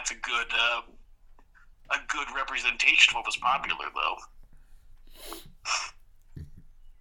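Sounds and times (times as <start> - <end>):
speech: 0.1 - 1.0, 1.9 - 4.4, 5.2 - 6.0
breathy nasal sniffs: 5.0 - 6.6.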